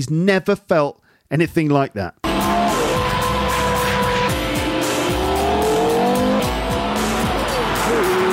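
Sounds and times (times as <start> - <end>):
speech: 0.0 - 2.2
5.7-litre V10 racing-derived engine roaring in a road sports car at speed on a track: 2.2 - 8.3
road and tyre noise: 2.3 - 8.3.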